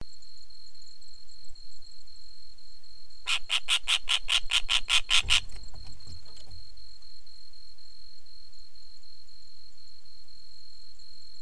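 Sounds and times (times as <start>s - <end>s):
Letter-winged kite Elanus Scriptus calling grating notes: 3.3s - 6.5s.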